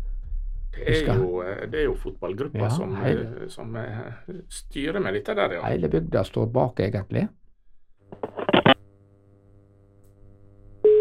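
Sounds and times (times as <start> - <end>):
quiet telephone line hum: 0.0 - 6.2, 8.0 - 11.0
speech: 0.8 - 7.4
dialing clicks and beeps: 8.2 - 8.8
steady telephone ringing tone: 10.8 - 11.0.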